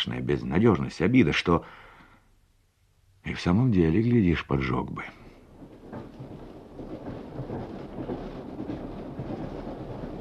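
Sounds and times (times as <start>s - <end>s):
speech: 0.0s - 1.9s, 3.2s - 5.2s
express train car rolling along the rails heard from inside: 4.6s - 10.1s.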